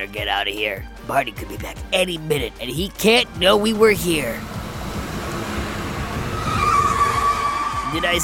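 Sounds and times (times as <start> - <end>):
speech: 0.0 - 4.5, 7.9 - 8.2
van engine rumble: 3.2 - 8.0
van tires squealing as it skids: 3.7 - 8.2.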